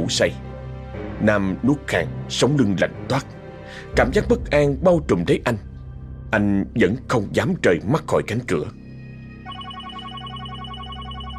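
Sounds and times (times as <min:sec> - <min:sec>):
speech: 0:00.0 - 0:00.4, 0:01.2 - 0:05.7, 0:06.3 - 0:08.8
mobile phone ringing with a bright electronic ringtone: 0:09.4 - 0:11.3.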